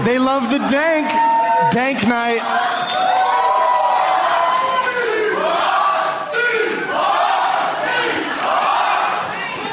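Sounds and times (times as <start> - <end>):
speech: 0.1 - 2.9
large live crowd yelling a rhythmic sports chant: 2.3 - 9.7.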